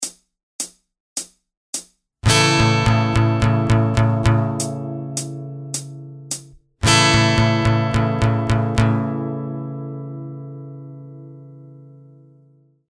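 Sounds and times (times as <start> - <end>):
slow rock guitar strumming with capo: 2.2 - 12.5.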